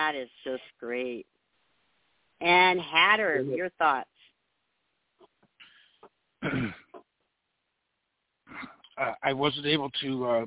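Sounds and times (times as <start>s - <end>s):
speech: 0.1s - 1.4s, 2.4s - 4.1s, 6.4s - 6.8s, 8.5s - 10.4s
person coughing: 6.4s - 7.0s
throat clearing: 6.4s - 7.0s, 8.5s - 9.2s.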